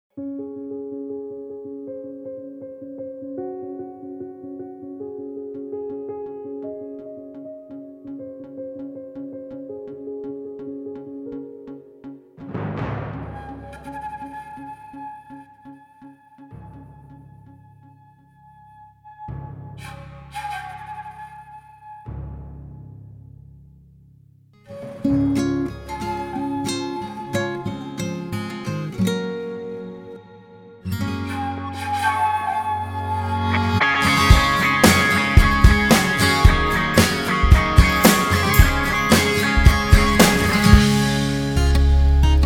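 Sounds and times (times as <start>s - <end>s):
acoustic pop emo comedy song: 24.7s - 42.4s.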